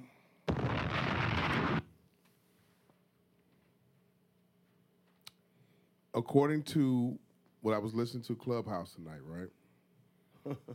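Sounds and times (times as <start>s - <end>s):
bomb explosion sound effect: 0.5s - 1.9s
speech: 6.2s - 9.6s, 10.4s - 10.7s.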